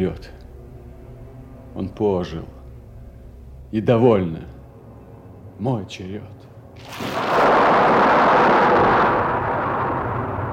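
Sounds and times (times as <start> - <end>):
speech: 0.0 - 0.4, 1.8 - 2.6, 3.7 - 4.5, 5.6 - 7.4
deep rolling thunder in a thunderstorm: 6.8 - 10.5.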